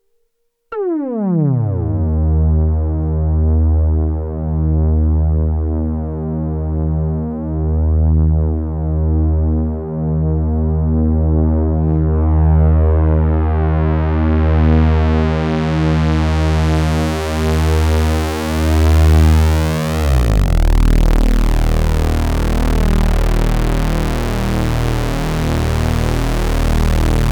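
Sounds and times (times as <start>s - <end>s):
analog synthesizer with six VCOs and two 24dB filters: 0.7s - 27.3s.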